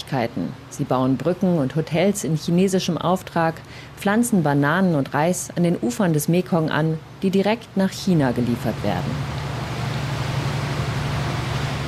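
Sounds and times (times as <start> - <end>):
speech: 0.1 - 9.4
diesel engine of a 30-metre narrow river boat at full throttle upstream on the Mekong: 8.3 - 11.8.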